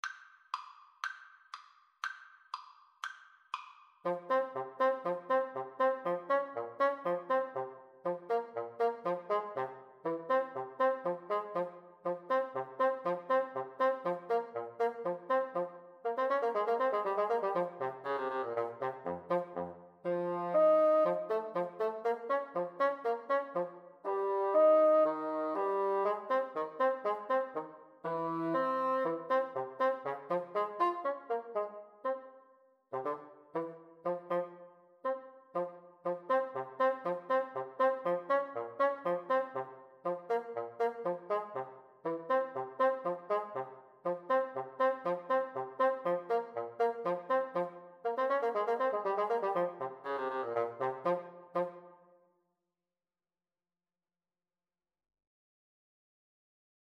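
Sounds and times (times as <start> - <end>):
French horn in a duet: 4.1 - 32.3, 32.9 - 52.1
bassoon in a duet: 4.1 - 51.9.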